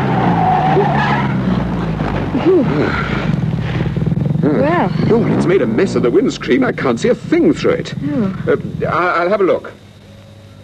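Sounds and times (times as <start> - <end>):
car tyres skidding as the driver brakes hard and pulls the handbrake: 0.0 - 4.1
car engine rumbling: 0.0 - 10.6
speech: 4.9 - 9.8.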